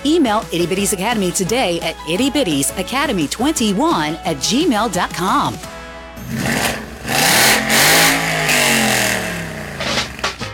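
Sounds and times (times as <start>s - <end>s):
speech: 0.0s - 6.7s
car engine revving and idling: 6.2s - 10.4s.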